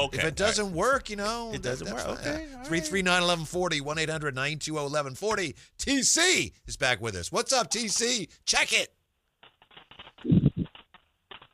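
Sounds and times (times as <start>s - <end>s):
speech: 0.0s - 9.0s
typewriter keys clacking as if over a phone line: 9.4s - 11.5s.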